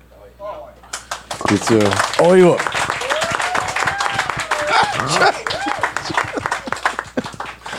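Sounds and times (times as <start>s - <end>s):
audience applauding: 0.9s - 7.7s
a few raised voices: 1.4s - 6.6s
laughter: 1.4s - 7.7s
speech: 1.5s - 2.8s, 5.0s - 6.2s
whoop-like call: 2.0s - 7.0s.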